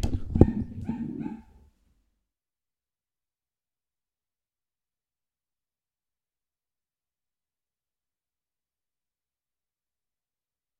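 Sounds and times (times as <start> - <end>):
dog barking: 0.4 - 1.6.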